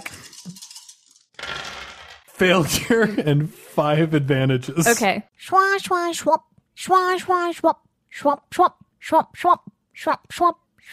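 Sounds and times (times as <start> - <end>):
dice rolled on a table for a game: 0.0 - 2.3
speech: 2.4 - 10.9.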